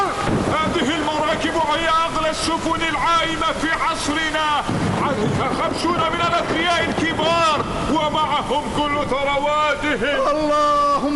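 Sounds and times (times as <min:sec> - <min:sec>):
thunder: 0:00.0 - 0:03.6, 0:04.4 - 0:09.3
rain: 0:00.0 - 0:11.1
steady roaring wind over a stormy sea: 0:00.0 - 0:11.1
waves crashing around a ship on a stormy sea: 0:00.0 - 0:11.1
speech: 0:02.4 - 0:11.1.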